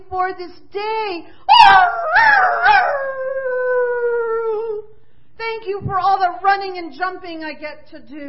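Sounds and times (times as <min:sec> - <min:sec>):
speech: 0:00.0 - 0:03.3, 0:05.4 - 0:08.2
dog howling: 0:01.5 - 0:04.8.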